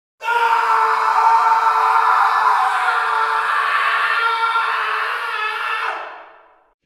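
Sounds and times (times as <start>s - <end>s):
man screaming: 0.2s - 6.3s.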